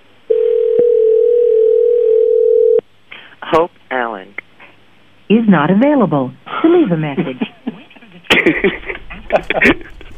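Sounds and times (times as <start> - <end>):
telephone dial tone while a call is placed: 0.3 - 2.8
speech: 3.6 - 3.8, 5.3 - 7.5, 8.4 - 9.9
laughter: 7.2 - 10.1.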